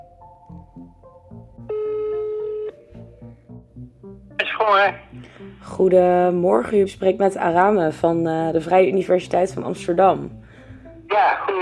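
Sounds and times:
low musical background: 0.0s - 11.6s
telephone line tone: 1.7s - 2.8s
voice on a phone line as the call connects: 4.4s - 5.0s, 11.1s - 11.6s
speech: 4.6s - 10.4s, 11.2s - 11.6s.

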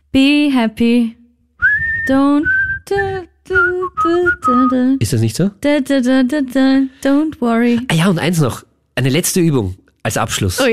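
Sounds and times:
speech: 0.1s - 1.2s, 2.1s - 10.7s
person whistling a cheerful tune: 1.6s - 4.9s.

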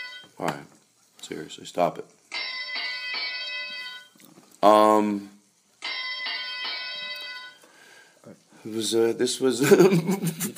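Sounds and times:
bright bell struck repeatedly: 0.0s - 0.4s, 2.3s - 4.2s, 5.8s - 7.6s
speech: 0.4s - 2.2s, 4.6s - 5.4s, 8.6s - 10.5s.

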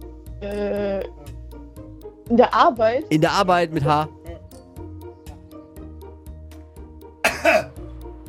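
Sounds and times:
speech: 0.4s - 1.2s, 2.3s - 4.2s
cough: 7.2s - 7.8s.

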